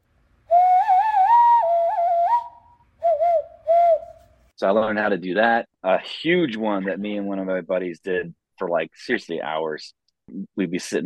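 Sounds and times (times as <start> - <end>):
hollow hooting hand whistle blown through cupped hands: 0.5 - 4.3
speech: 4.6 - 11.0.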